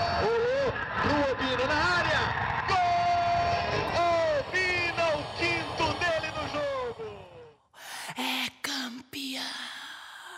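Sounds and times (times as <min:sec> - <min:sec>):
football crowd roaring and chanting: 0:00.0 - 0:07.6.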